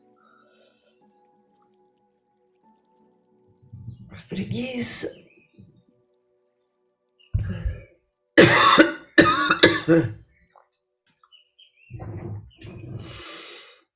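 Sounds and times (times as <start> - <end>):
speech: 4.2 - 5.2, 9.9 - 10.2
person coughing: 8.4 - 10.2
breathy exhale: 12.9 - 13.9.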